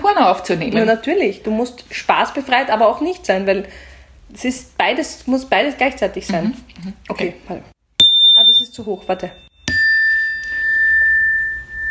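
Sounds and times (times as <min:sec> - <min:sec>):
speech: 0:00.1 - 0:07.8, 0:08.6 - 0:09.5
electronic doorbell tone: 0:08.0 - 0:11.8.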